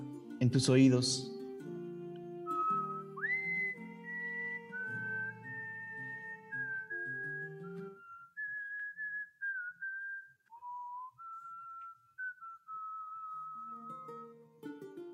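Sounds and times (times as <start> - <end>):
speech: 0.4 - 1.3
person whistling a slow wavering melody: 1.8 - 14.4.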